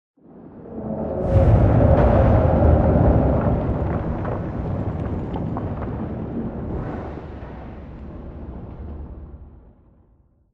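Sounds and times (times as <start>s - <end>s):
exterior explosion rumble with wash tail: 0.2s - 10.5s.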